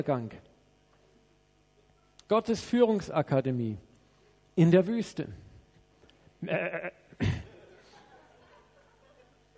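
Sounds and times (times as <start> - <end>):
speech: 0.0 - 0.5, 2.3 - 3.9, 4.6 - 5.4, 6.4 - 7.4
sheep bleating: 6.4 - 7.0
laughter: 6.5 - 9.5.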